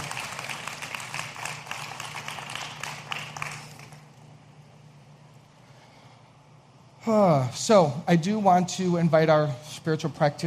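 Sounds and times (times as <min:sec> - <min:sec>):
crowd applauding: 0:00.0 - 0:04.1
faint hum: 0:00.0 - 0:10.4
speech: 0:07.0 - 0:10.4.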